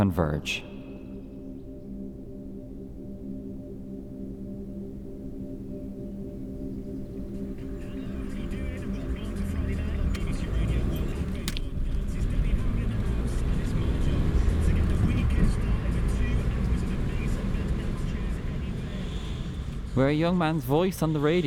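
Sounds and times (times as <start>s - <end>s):
speech: 0.0s - 0.7s, 20.0s - 21.4s
car engine rumbling inside the moving vehicle: 7.0s - 21.4s
road noise: 7.2s - 21.4s.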